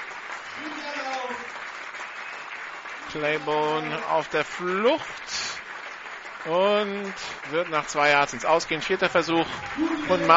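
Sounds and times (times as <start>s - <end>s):
large stadium crowd at a football game applauding: 0.0s - 10.3s
speech: 3.1s - 5.4s, 6.4s - 10.3s
raised voice calling: 9.4s - 10.3s.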